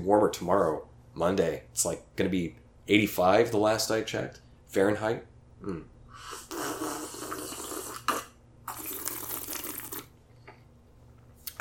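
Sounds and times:
speech: 0.0 - 6.9
person drinking water: 6.3 - 10.2.

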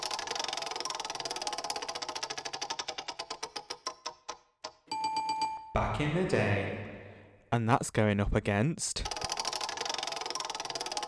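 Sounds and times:
random track-picker wheel spinning and ticking: 0.0 - 4.4, 9.0 - 11.0
speech: 5.8 - 6.9, 7.5 - 9.1.

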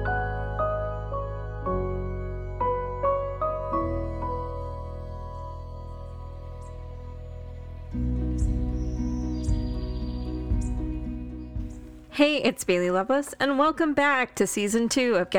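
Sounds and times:
soft musical tones: 0.0 - 12.2
hummingbird chirping outside the window: 4.6 - 12.0
speech: 12.2 - 15.3.

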